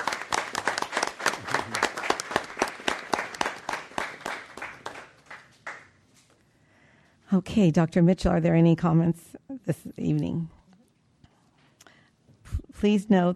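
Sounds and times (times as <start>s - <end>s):
audience applause for staff at a board meeting: 0.0s - 5.9s
speech: 7.3s - 10.6s, 12.8s - 13.3s.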